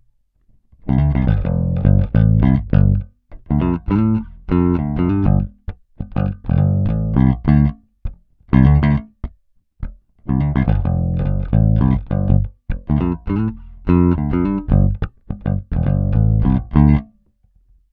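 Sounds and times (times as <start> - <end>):
Peavey guitar stock bridge pickup tone up: 0.9 - 7.7, 10.3 - 17.1.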